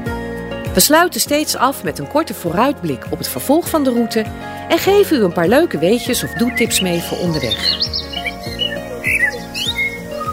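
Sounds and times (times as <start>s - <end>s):
speech: 0.8s - 8.0s
low humming rhythmically pulsing tonal music: 4.2s - 10.3s
birds chirping with calls and squawks: 4.7s - 10.3s.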